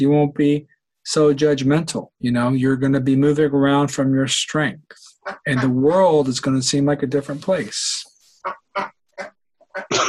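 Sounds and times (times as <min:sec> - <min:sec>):
speech: 0:00.0 - 0:10.0
pet ducks quacking at the window: 0:05.0 - 0:06.0, 0:08.4 - 0:10.0.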